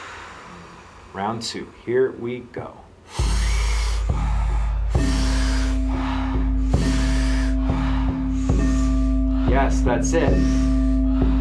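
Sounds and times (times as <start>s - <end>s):
low sustained drone: 0.0s - 1.8s, 3.1s - 11.3s
deep breaths during a guided breathing exercise: 0.0s - 1.9s, 3.0s - 11.3s
speech: 1.2s - 3.2s, 9.6s - 10.7s
soft chime-like tones: 5.0s - 11.3s.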